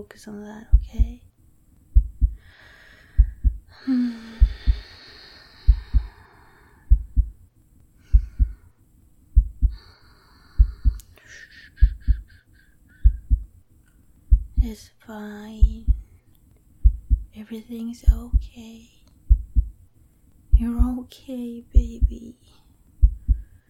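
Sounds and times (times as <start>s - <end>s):
speech: 0.0s - 1.3s, 3.8s - 4.5s, 14.6s - 15.9s, 17.4s - 19.0s, 20.6s - 22.6s
heartbeat heard through the chest: 0.7s - 1.2s, 1.9s - 2.5s, 3.1s - 3.7s, 4.4s - 4.9s, 5.7s - 6.2s, 6.9s - 7.4s, 8.1s - 8.7s, 9.3s - 9.8s, 10.6s - 11.0s, 11.8s - 12.4s, 13.0s - 13.6s, 14.3s - 14.8s, 15.6s - 16.1s, 16.8s - 17.4s, 18.0s - 18.5s, 19.2s - 19.8s, 20.5s - 21.0s, 21.8s - 22.2s, 23.0s - 23.6s.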